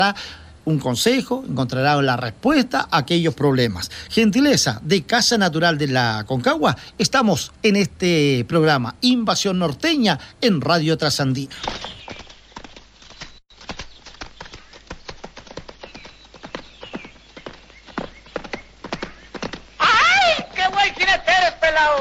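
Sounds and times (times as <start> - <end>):
speech: 0.0 - 12.0
horse hooves clip-clopping at a brisk walk: 11.5 - 21.9.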